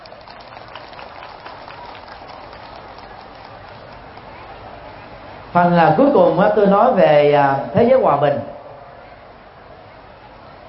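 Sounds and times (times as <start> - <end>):
large audience of Buddhist followers applauding loudly: 0.0 - 5.0
speech: 5.5 - 8.5.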